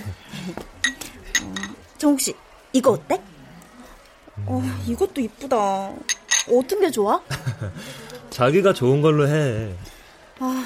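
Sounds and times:
ceramic bowls knocking together as they are handled: 0.8s - 1.9s, 6.0s - 6.6s
speech: 2.0s - 3.3s, 4.4s - 10.6s
laughter: 7.3s - 8.3s.

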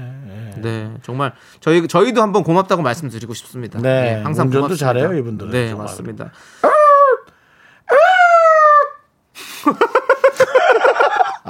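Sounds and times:
speech: 0.6s - 6.8s, 9.6s - 10.0s
voice imitating an emergency vehicle siren: 6.6s - 7.3s, 7.9s - 9.1s
laughter: 9.6s - 11.4s.

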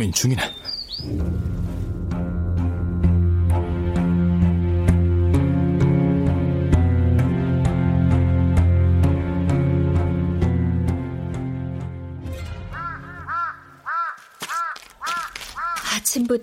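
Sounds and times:
speech: 0.0s - 1.5s
steady music: 1.1s - 13.9s
crow cawing: 12.6s - 16.1s.

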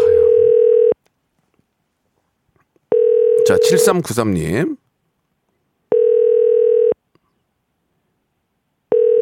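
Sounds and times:
unanswered telephone ringback tone: 0.0s - 1.0s, 2.9s - 3.9s, 5.9s - 7.0s, 8.9s - 9.2s
speech: 3.5s - 4.8s.

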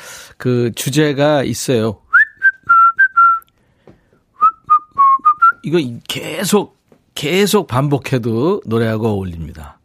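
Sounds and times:
speech: 0.4s - 2.0s, 5.7s - 9.8s
person whistling a bouncy melody: 2.1s - 3.5s, 4.4s - 5.6s.

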